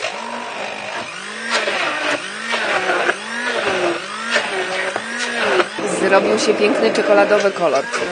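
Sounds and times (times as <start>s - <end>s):
blender whirring through thick chocolate bean batter: 0.0s - 8.1s
speech: 6.1s - 8.1s.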